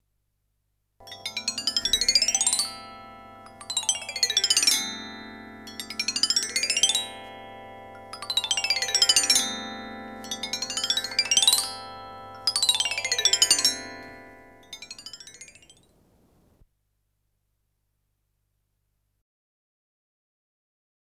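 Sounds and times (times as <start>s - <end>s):
vibraphone glissando effects with pedal: 1.0s - 16.0s.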